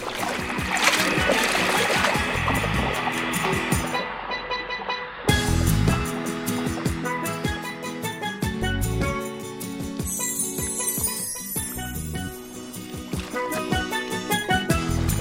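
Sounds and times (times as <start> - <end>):
loud water splashing and sloshing: 0.0 - 4.0
musical backing: 0.0 - 15.2.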